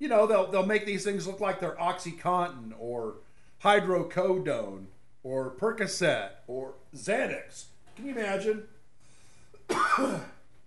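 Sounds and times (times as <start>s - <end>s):
speech: 0.0s - 8.7s, 9.7s - 10.3s
harsh cough with throat-clearing rasp: 9.6s - 10.4s.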